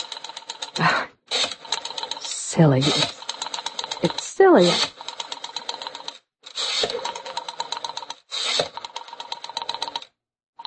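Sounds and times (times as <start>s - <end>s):
telephone ringing over a line: 0.0s - 8.1s
clicking and rattling of a woman dialing a phone: 0.0s - 10.1s
speech: 2.6s - 3.2s, 4.0s - 5.0s.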